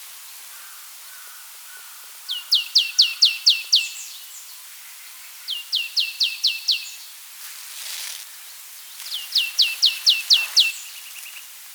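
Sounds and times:
faint background hiss: 0.0 - 11.7
Marsh tit Poecile palustris chipping calls: 9.0 - 10.9.

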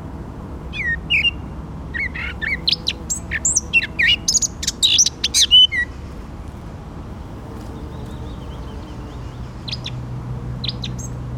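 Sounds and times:
Eurasian blackcap singing: 0.7 - 1.4, 2.0 - 5.9, 7.7 - 10.0, 10.6 - 11.2.

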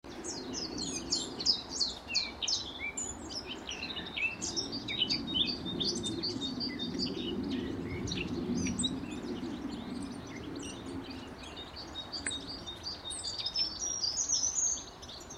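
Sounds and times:
Eurasian blackcap Sylvia atricapilla singing: 0.1 - 15.3.

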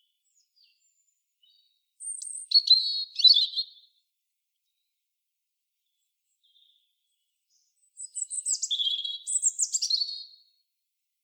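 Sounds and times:
European robin Erithacus rubecula singing: 0.0 - 3.9, 6.4 - 10.4.

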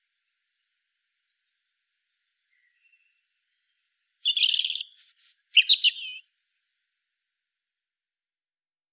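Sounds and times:
European robin Erithacus rubecula singing whistle, buzzy trill and liquid notes: 0.5 - 6.3.

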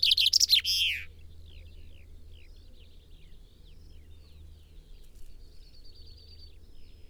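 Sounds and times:
Common chaffinch Fringilla coelebs song: 0.0 - 1.1.

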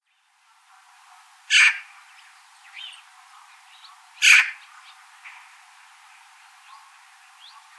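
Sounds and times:
Eurasian magpie Pica pica giving harsh rasping calls: 1.5 - 1.9, 4.2 - 4.6.

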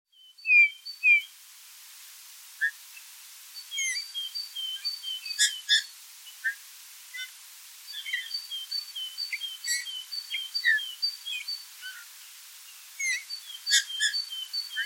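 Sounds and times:
low constant hiss: 0.1 - 14.8
Eurasian bullfinch Pyrrhula pyrrhula calls: 3.7 - 6.6, 7.9 - 12.1, 13.0 - 14.8.

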